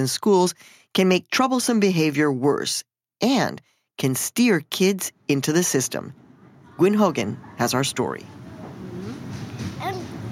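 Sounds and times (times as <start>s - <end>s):
speech: 0.0s - 6.2s, 6.8s - 8.3s
low rumble inside a moving train heading west out of New York City: 5.9s - 10.3s.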